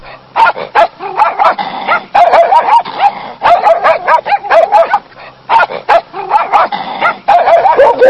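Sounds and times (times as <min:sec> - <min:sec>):
pack of dogs barking and yipping: 0:00.4 - 0:08.0.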